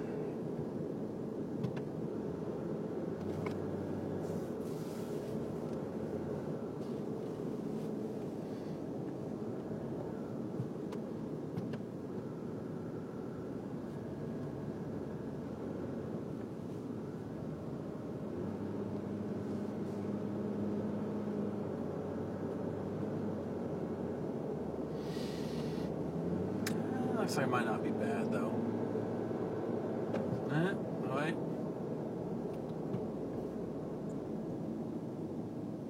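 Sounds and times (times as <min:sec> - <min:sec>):
dense road traffic engine and tire drone: 0:00.0 - 0:35.8.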